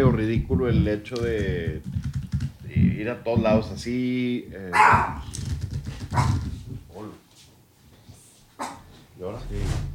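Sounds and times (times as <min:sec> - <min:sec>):
speech: 0:00.0 - 0:02.2, 0:02.8 - 0:05.4, 0:06.1 - 0:07.2, 0:09.2 - 0:09.9
guard dog barking: 0:04.8 - 0:05.3, 0:06.1 - 0:06.4.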